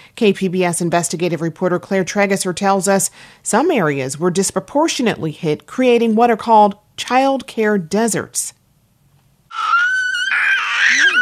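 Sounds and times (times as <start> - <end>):
speech: 0.2 - 8.6
toddler babbling and shrieking: 9.5 - 11.2.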